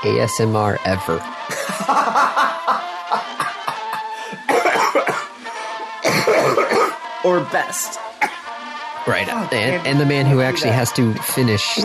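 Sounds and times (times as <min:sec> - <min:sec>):
speech: 0:00.0 - 0:02.5, 0:07.2 - 0:08.1, 0:09.0 - 0:11.8
person coughing: 0:01.5 - 0:02.0, 0:03.2 - 0:07.0, 0:08.2 - 0:08.4
laughter: 0:01.5 - 0:06.6, 0:09.8 - 0:11.8.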